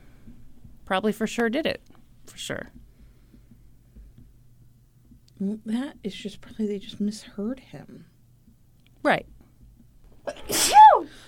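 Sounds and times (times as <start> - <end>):
speech: 0.9 - 2.8, 5.4 - 8.1, 9.0 - 9.3
sneeze: 10.3 - 11.1.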